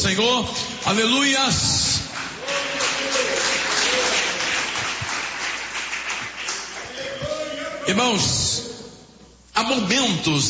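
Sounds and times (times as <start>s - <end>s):
speech: 0.0s - 4.2s, 7.9s - 8.5s, 9.6s - 10.4s
church audience applauding: 2.0s - 7.7s.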